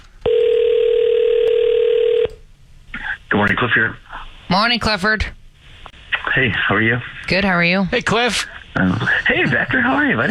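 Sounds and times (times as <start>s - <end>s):
telephone dial tone while placing a call: 0.2s - 2.4s
speech: 3.4s - 5.4s, 6.4s - 10.3s.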